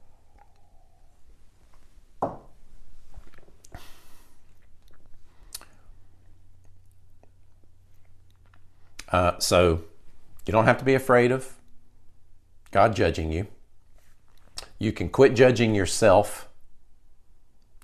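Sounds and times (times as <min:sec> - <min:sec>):
person sipping water: 0:00.0 - 0:01.9, 0:03.0 - 0:09.0
low hum: 0:00.0 - 0:17.8
speech: 0:09.1 - 0:11.6, 0:12.7 - 0:13.6, 0:14.8 - 0:16.5
sharp click: 0:17.6 - 0:17.8.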